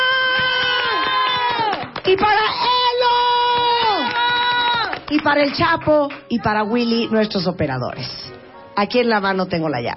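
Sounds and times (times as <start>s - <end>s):
crowd cheering and screaming: 0.0s - 5.0s
rhythmic clapping: 0.0s - 6.4s
speech: 2.1s - 2.8s, 5.1s - 9.9s.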